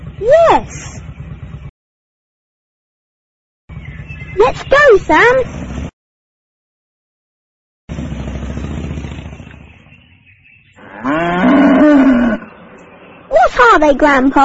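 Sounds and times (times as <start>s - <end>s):
speech: 0.2s - 1.0s, 4.6s - 5.6s, 13.8s - 14.4s
cow mooing: 10.8s - 12.6s.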